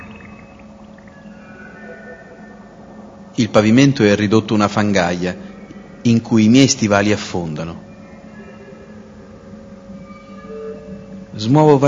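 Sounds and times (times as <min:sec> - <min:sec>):
water flowing among rocks and broken beams in a collapsed tunnel: 0:00.0 - 0:01.4
speech: 0:03.4 - 0:07.9, 0:11.4 - 0:11.8.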